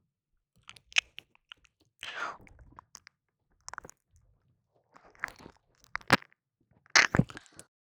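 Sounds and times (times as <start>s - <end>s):
close-miked ASMR ear nibbling and biting: 0.6s - 4.0s, 5.0s - 6.3s, 7.0s - 7.5s.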